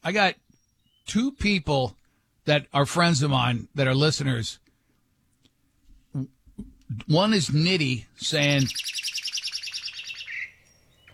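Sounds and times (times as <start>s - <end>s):
speech: 0.0s - 0.4s, 1.1s - 4.6s, 6.1s - 9.2s
bird chirping: 0.0s - 1.5s, 7.4s - 11.1s.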